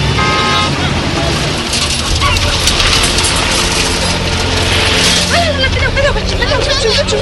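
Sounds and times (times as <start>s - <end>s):
convoy of car engines rumbling while parking in a village: 0.0s - 7.2s
car horn toot: 0.1s - 0.8s.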